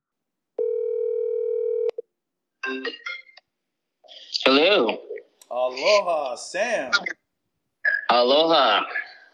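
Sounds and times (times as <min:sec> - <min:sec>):
steady electronic phone tone of an outgoing call: 0:00.6 - 0:02.0
speech: 0:02.7 - 0:03.2, 0:04.4 - 0:07.2, 0:08.1 - 0:09.0.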